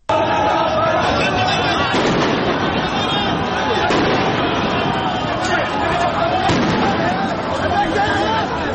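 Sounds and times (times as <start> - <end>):
dense crowd roaring and shouting at a street protest: 0.0 - 8.7
sharp gunshots at a street protest: 1.6 - 7.6.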